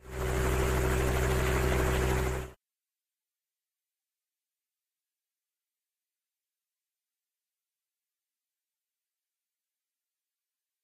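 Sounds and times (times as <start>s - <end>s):
helicopter outdoors: 0.0s - 2.6s.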